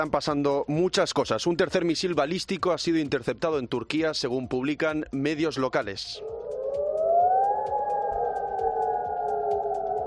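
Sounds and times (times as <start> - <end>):
speech: 0.0 - 6.4
air raid sirens wailing over a city: 6.2 - 10.0
low rumbling urban backdrop: 6.2 - 10.0.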